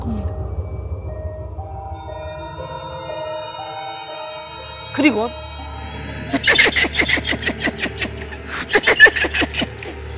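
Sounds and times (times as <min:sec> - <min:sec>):
low steady hum: 0:00.0 - 0:07.0
speech: 0:05.0 - 0:05.5, 0:06.3 - 0:09.4
eerie girl's laughter sound effect: 0:06.2 - 0:10.1.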